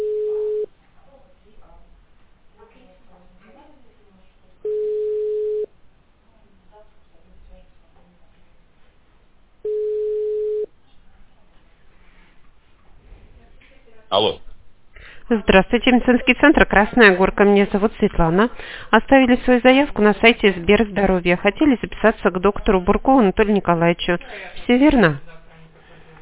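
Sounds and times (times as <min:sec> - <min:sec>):
telephone line tones while a call is connected to a patient: 0:00.0 - 0:00.7, 0:04.6 - 0:05.7, 0:09.6 - 0:10.7
speech: 0:14.1 - 0:14.4, 0:15.3 - 0:25.3.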